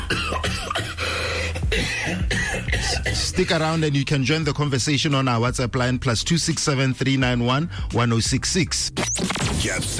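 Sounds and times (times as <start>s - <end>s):
sharp harsh coughs: 0.0s - 3.8s
steady music: 0.0s - 9.9s
speech: 0.1s - 0.8s, 2.1s - 9.9s.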